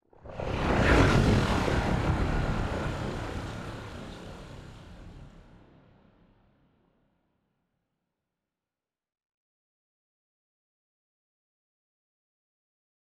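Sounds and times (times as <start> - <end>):
destroyer ship moving: 0.2 - 6.0.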